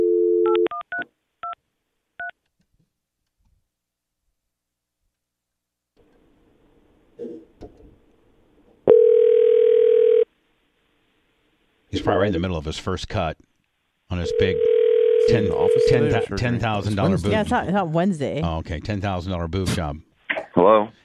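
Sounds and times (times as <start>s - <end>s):
telephone keypad DTMF tones dialing out: 8.9s - 10.2s, 14.3s - 16.0s
speech: 12.2s - 13.5s, 14.1s - 21.0s.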